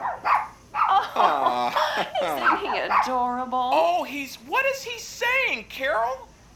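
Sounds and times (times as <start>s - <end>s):
small dog barking: 0.0s - 1.3s, 2.2s - 3.2s
laughter: 0.9s - 3.1s
speech: 2.0s - 6.3s.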